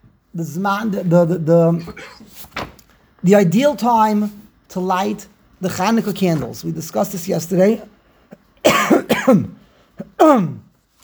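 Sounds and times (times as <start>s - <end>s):
speech: 0.4s - 7.9s, 9.3s - 9.6s, 10.2s - 10.6s
person coughing: 1.8s - 2.3s, 7.8s - 10.7s.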